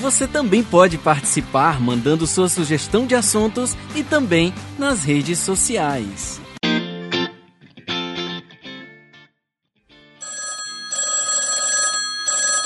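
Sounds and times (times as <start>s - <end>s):
speech: 0.0s - 6.5s
telephone ringing with shrill electronic trill: 10.2s - 12.6s.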